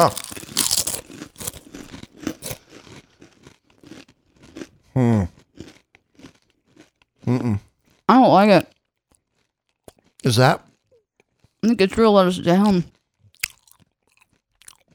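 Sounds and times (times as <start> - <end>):
speech: 0.0 - 0.2, 10.3 - 10.7, 11.7 - 13.0
short voiced sounds: 0.0 - 0.6
thick tortilla chips being bitten and chewed: 0.0 - 4.8, 5.4 - 11.6, 12.8 - 14.9.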